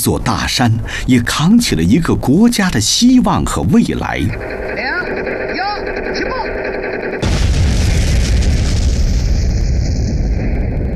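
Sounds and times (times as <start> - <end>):
speech: 0.0 - 4.9
atomic bomb explosion with roaring rumble: 4.2 - 10.9.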